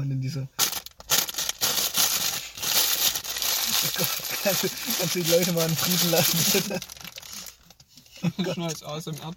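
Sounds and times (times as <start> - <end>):
speech: 0.2 - 0.7, 3.8 - 7.0, 8.2 - 9.3
crinkly plastic cookie packaging rustling and crackling: 0.6 - 7.8.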